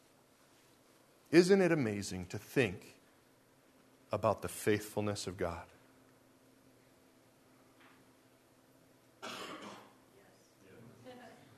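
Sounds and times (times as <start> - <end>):
speech: 1.3 - 3.0, 4.1 - 5.8
single sharp cough from the audience: 9.2 - 10.0.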